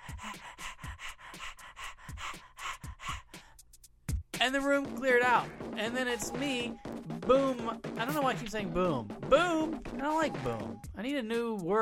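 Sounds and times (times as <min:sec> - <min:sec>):
human voice imitating a dog panting: 0:00.0 - 0:03.7
speech: 0:04.4 - 0:11.8.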